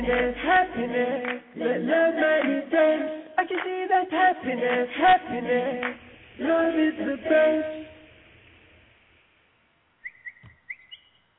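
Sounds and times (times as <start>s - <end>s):
low hum: 0.0s - 11.3s
speech: 0.1s - 7.9s
birds chirping: 10.0s - 11.3s.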